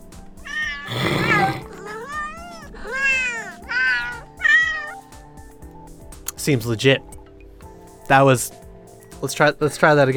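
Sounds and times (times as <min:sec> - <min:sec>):
app-generated electronic synthetic cat meows: 0:00.4 - 0:05.0
speech: 0:06.4 - 0:07.1, 0:08.1 - 0:08.6, 0:09.2 - 0:10.1.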